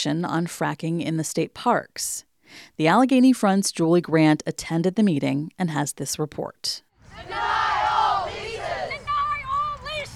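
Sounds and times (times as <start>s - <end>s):
speech: 0.0s - 7.6s
protest crowd singing songs at an outdoor rally in Columbus Ohio: 7.0s - 10.1s.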